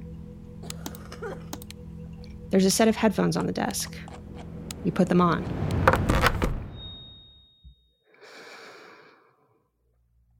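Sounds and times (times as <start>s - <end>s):
steady low hum: 0.0s - 6.8s
soft sharp computer mouse clicks: 0.7s - 1.8s
speech: 1.2s - 1.6s, 2.5s - 4.2s, 4.8s - 5.7s.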